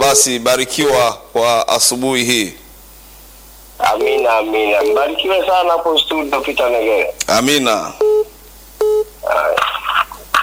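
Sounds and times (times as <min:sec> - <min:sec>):
speech: 0:00.1 - 0:02.6, 0:03.8 - 0:08.2
short flat telephone beep: 0:08.0 - 0:09.1.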